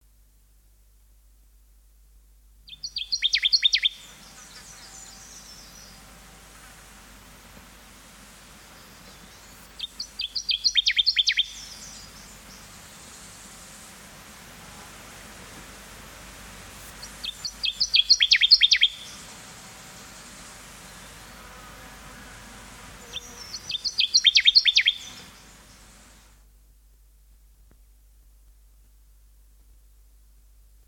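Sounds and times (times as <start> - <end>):
Connecticut warbler singing: 2.7 - 6.0, 8.6 - 13.3, 17.0 - 21.4, 23.0 - 25.9.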